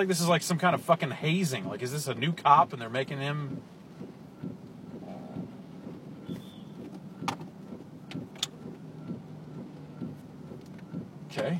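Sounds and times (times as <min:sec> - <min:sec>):
speech: 0:00.0 - 0:03.8
street traffic rolling past: 0:00.0 - 0:11.5
faint clicks and knocks: 0:02.9 - 0:11.5.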